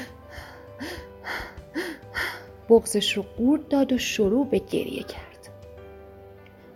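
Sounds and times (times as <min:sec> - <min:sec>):
person panting out of breath: 0:00.0 - 0:02.6
speech: 0:02.7 - 0:05.3.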